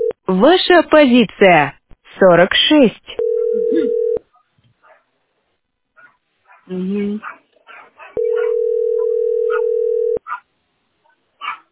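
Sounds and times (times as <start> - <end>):
speech: 0.3 - 3.9, 6.7 - 7.4
telephone ringing tone while a call is being placed: 3.2 - 4.2, 8.2 - 10.2.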